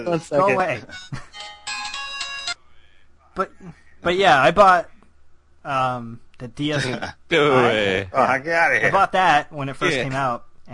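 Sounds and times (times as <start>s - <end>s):
speech: 0.0s - 1.2s, 3.4s - 4.9s, 5.6s - 10.7s
phone ringtone with a bright tonal melody: 0.4s - 2.6s.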